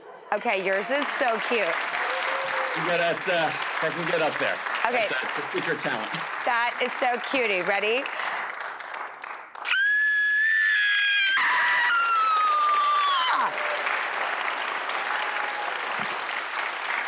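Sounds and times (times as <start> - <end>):
crowd applauding and cheering: 0.0 - 17.0
speech: 0.3 - 2.0, 2.8 - 8.2
person screaming in a screaming contest: 9.7 - 13.6.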